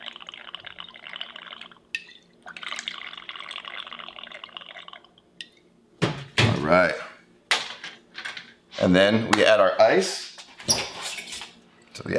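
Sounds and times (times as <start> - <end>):
clarified milk cocktail poured from a batch into a glass: 0.0 - 5.6
small glassy clink: 2.0 - 2.3
speech: 6.7 - 7.0, 8.8 - 10.8.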